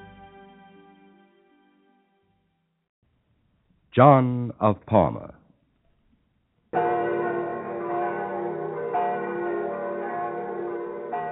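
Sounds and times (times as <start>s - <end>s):
speech: 4.0s - 5.4s
church bells of Rome ringing a peal in the early morning: 6.8s - 11.3s.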